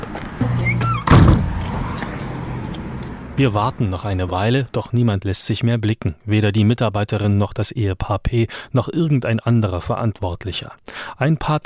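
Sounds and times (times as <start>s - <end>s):
heavy door thudding shut: 0.6s - 1.9s
door rattling as it settles: 0.8s - 1.6s
speech: 3.4s - 11.6s.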